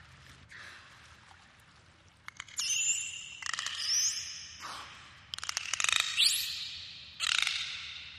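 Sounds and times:
dolphin rising whistle: 2.6 - 4.6, 6.0 - 7.8.

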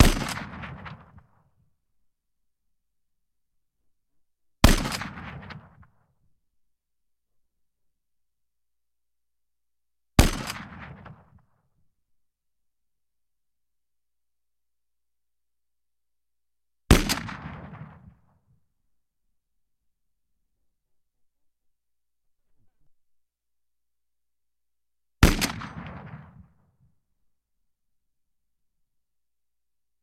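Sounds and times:
Browning 82 pistol: 0.0 - 1.3, 4.6 - 5.9, 10.2 - 11.4, 16.9 - 18.2, 25.2 - 26.6.

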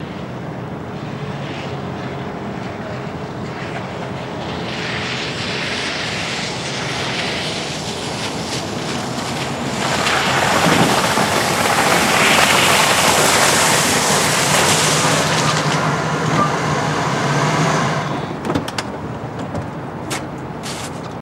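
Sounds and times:
car on snow tires stopping on a snowy road: 0.9 - 18.4, 19.0 - 21.1.

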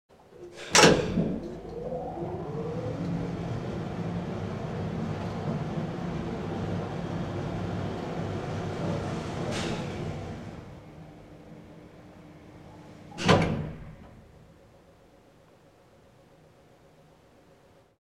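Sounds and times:
old type elevator gate: 0.3 - 11.3, 12.5 - 14.4.

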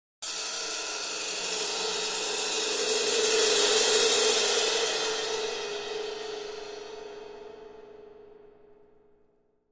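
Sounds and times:
cymbal crescendo: 0.3 - 8.1.

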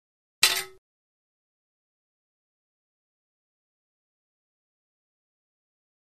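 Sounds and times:
broadswords hitting and clanging: 0.4 - 0.8.

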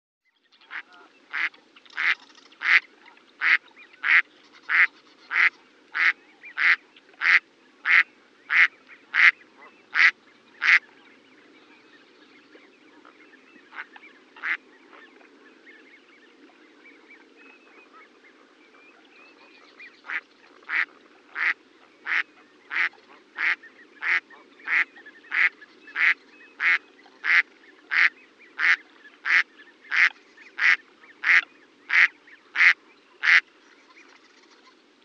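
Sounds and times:
mallard quacking: 0.7 - 2.8, 3.4 - 10.8, 13.7 - 14.6, 20.1 - 33.4.

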